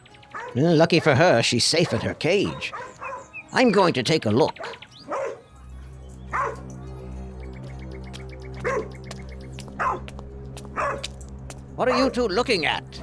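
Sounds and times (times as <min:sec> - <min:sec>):
wild dogs barking: 0:00.2 - 0:03.4, 0:04.5 - 0:05.5, 0:06.3 - 0:06.7, 0:08.6 - 0:09.0, 0:09.6 - 0:11.2
speech: 0:00.5 - 0:04.8, 0:11.8 - 0:13.0
steady low droning hum: 0:05.7 - 0:13.0.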